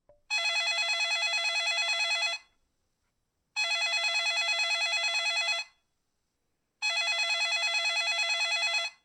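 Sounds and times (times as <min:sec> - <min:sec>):
telephone: 0:00.3 - 0:02.5, 0:03.6 - 0:05.8, 0:06.8 - 0:09.0.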